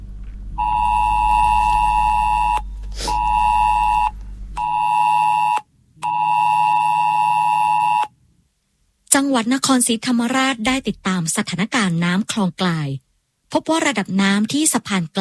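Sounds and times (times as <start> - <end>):
cell broadcast emergency test alert tone in southern Thailand: 0.6 - 8.1
speech: 9.2 - 15.2.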